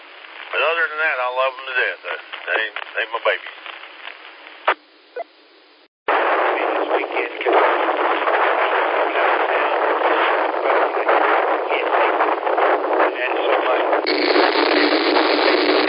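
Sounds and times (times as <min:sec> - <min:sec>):
speech: 0:00.7 - 0:03.6
strong wind buffeting microphone outdoors at a Walmart in Simpsonville: 0:06.1 - 0:15.8.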